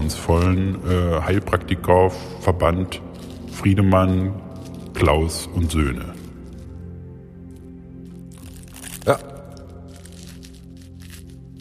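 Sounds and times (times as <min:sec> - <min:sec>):
speech: 0:00.1 - 0:04.4, 0:05.0 - 0:06.2, 0:09.0 - 0:09.3
paper money rustling and crinkling into an envelope: 0:03.0 - 0:11.5.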